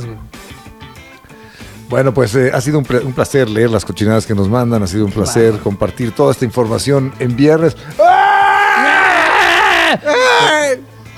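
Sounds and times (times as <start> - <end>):
speech: 1.9 - 8.4
loud drawn-out human scream from a dungeon: 8.0 - 11.1
shorter strained cry: 8.0 - 11.1.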